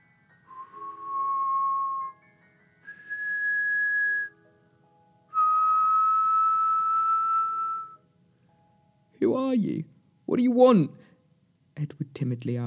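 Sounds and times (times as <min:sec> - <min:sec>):
man whistling a slow tune: 0:00.5 - 0:04.4, 0:05.3 - 0:08.0
speech: 0:09.2 - 0:11.0, 0:11.8 - 0:12.6.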